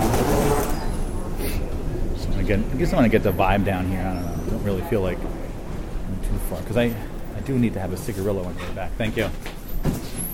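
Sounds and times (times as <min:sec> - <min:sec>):
indistinct crowd murmur in a station concourse: 0:00.0 - 0:07.4
low rumble of trains and machinery in a station concourse: 0:00.0 - 0:10.3
speech: 0:02.5 - 0:05.4, 0:06.5 - 0:10.0.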